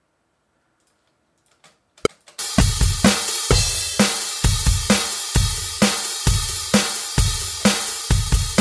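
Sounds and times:
recorded drum track playing back: 2.1s - 8.5s.

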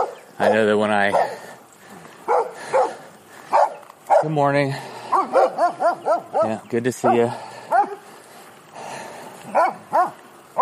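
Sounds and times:
dog barking: 0.0s - 1.4s, 2.2s - 4.3s, 5.1s - 8.0s, 9.5s - 10.6s
speech: 0.4s - 1.6s, 4.2s - 5.4s, 6.4s - 7.5s.

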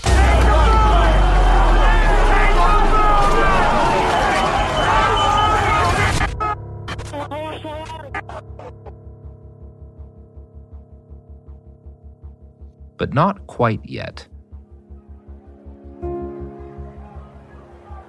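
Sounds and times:
dense outdoor protest crowd roaring and shouting: 0.0s - 6.4s, 15.0s - 18.0s
speech: 13.1s - 14.3s.

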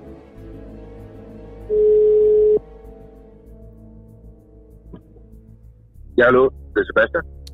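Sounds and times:
telephone ringing tone while calling from a newsroom: 1.7s - 2.6s
speech: 6.2s - 7.4s.

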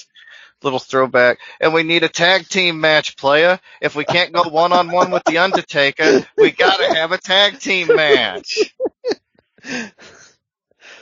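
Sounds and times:
speech: 0.6s - 10.3s
laughter: 3.9s - 9.2s
person sneezing: 6.0s - 7.0s, 7.6s - 8.8s.

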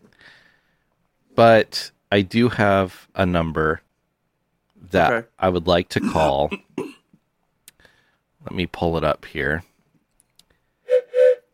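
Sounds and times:
speech: 1.4s - 3.8s, 4.8s - 7.0s, 8.4s - 9.7s
train whistle sound effect: 10.9s - 11.5s.

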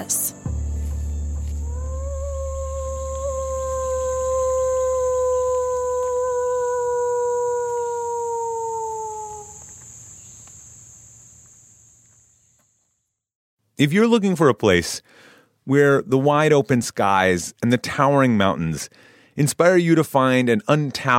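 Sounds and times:
low rumble: 0.0s - 6.4s
constant high insect-like drone: 0.4s - 12.2s
wolf howling at a wolf center in Eureka Missouri: 1.5s - 9.7s
speech: 13.8s - 21.1s.

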